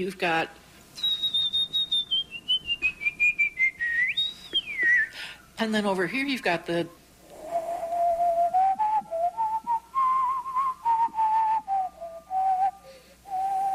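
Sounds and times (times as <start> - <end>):
speech: 0.0 - 1.1, 5.6 - 7.0
person whistling a melody through their teeth: 1.0 - 5.2, 7.4 - 13.7
breathy air noise of whistling: 2.8 - 5.6, 7.0 - 13.7.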